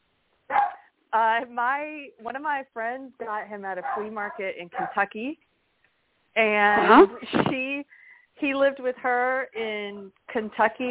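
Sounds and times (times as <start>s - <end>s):
dog barking at the mailman: 0.5s - 0.9s, 3.8s - 5.0s
speech: 1.2s - 5.5s, 6.4s - 10.8s.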